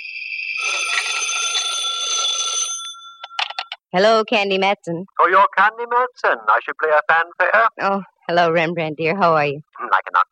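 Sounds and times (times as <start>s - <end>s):
telephone ringing with a rattling electric bell: 0.0s - 3.8s
speech: 3.9s - 10.3s.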